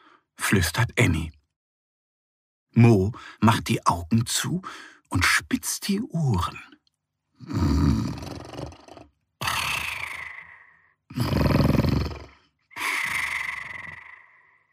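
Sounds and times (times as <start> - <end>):
speech: 0.5 - 1.4, 2.8 - 6.8, 7.4 - 8.4
loud snoring with rattling inhale and whistling exhale: 7.4 - 14.6.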